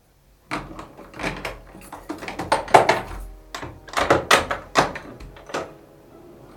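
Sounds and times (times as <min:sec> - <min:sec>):
padlock rattling and clicking as it is fastened: 0:00.5 - 0:05.7
small cage door clattering shut: 0:00.5 - 0:05.8.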